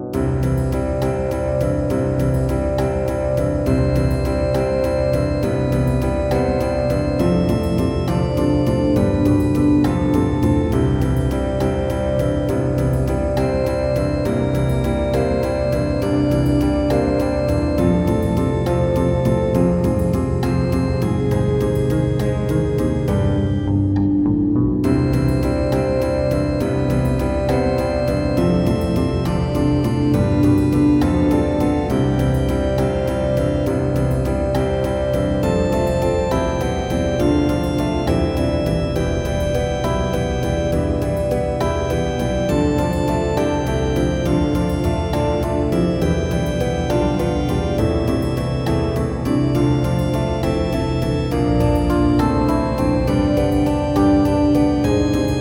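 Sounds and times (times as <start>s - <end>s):
60s style music: 0.1s - 55.3s.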